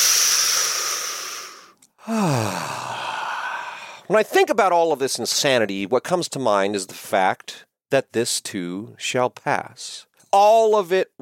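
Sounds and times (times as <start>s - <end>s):
deep breath with sighing exhale: 0.0s - 4.1s
speech: 2.0s - 2.7s, 4.1s - 11.2s.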